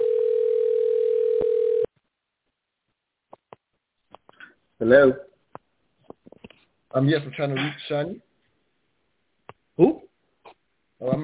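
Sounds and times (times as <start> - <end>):
steady electronic telephone tone while redialing a guest's number: 0.0 - 1.9
speech: 4.8 - 5.3, 6.9 - 8.3, 11.0 - 11.2.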